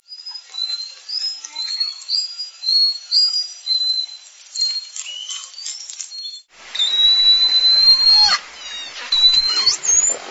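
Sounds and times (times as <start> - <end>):
Southern Resident killer whale whistles: 6.8 - 10.2.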